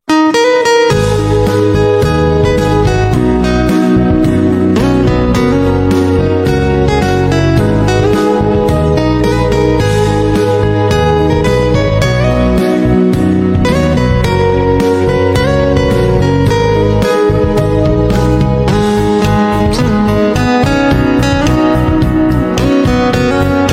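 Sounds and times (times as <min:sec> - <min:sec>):
guitar: 0:00.0 - 0:23.7.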